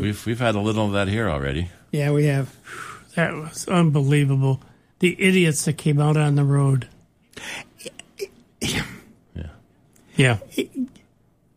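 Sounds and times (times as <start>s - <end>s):
speech: 0.0s - 8.0s, 8.6s - 9.5s, 10.2s - 10.9s
person sneezing: 8.2s - 9.2s.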